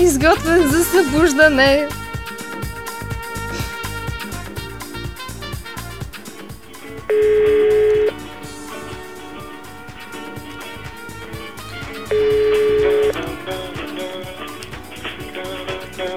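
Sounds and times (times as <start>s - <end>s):
steady rhythmic music bed of a morning radio show: 0.0s - 16.1s
speech: 0.2s - 2.0s
telephone ringback tone: 7.1s - 8.2s, 12.1s - 13.4s.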